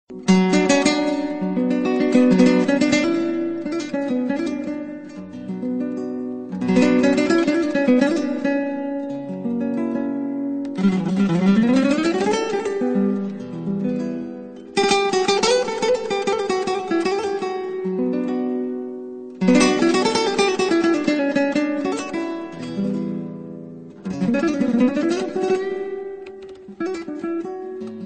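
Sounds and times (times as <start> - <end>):
Spanish guitar intro: 0.1 - 28.0.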